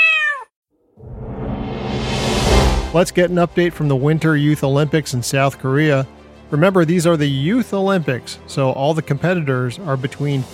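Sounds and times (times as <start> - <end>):
cat meowing: 0.0 - 0.5
loud rising whoosh of noise: 1.0 - 4.3
speech: 2.9 - 10.5.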